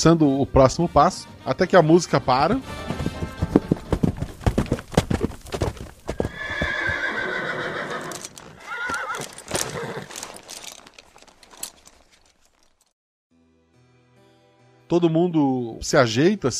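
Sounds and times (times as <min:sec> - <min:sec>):
speech: 0:00.0 - 0:02.9, 0:14.9 - 0:16.5
horses trotting with hoof clip-clops: 0:02.3 - 0:12.9
horse whinnying: 0:05.2 - 0:11.0.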